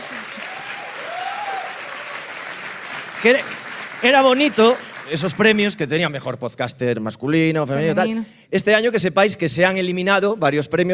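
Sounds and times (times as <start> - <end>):
audience applause honoring an award winner: 0.0 - 6.2
speech: 3.2 - 10.9.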